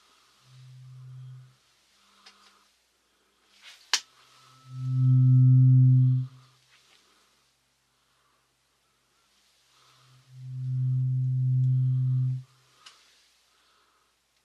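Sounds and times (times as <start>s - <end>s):
steady low electronic test tones in one ear: 0.5s - 1.5s, 4.3s - 6.5s, 10.1s - 12.5s.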